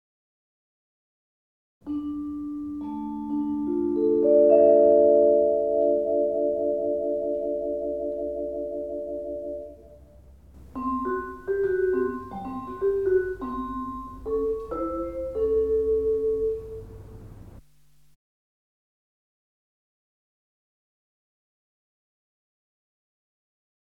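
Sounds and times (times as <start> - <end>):
vibraphone: 1.9 - 10.0, 10.7 - 17.2.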